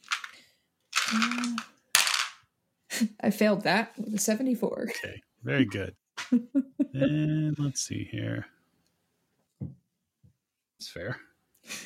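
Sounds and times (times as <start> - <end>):
dice clattering across a hard table: 0.0 - 0.4, 1.0 - 2.4
speech: 3.0 - 8.6, 10.8 - 11.8.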